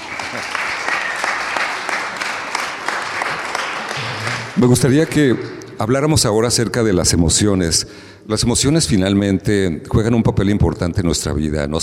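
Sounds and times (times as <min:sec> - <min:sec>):
crowd clapping: 0:00.0 - 0:05.5
speech: 0:04.6 - 0:11.8.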